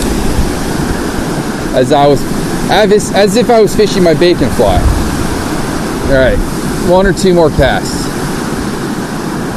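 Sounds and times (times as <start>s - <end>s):
fast-flowing river water rushing in pouring rain: 0.0s - 9.5s
speech: 1.8s - 5.0s, 6.1s - 8.0s.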